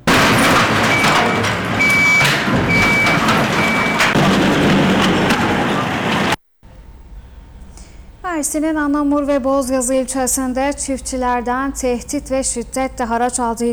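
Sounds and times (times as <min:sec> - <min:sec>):
loud engine rumble of excavator and work machines loading garbage onto trucks: 0:00.0 - 0:08.2
traffic noise: 0:00.0 - 0:13.7
work machine and truck reversing beeps: 0:00.2 - 0:04.2
speech: 0:08.4 - 0:13.7.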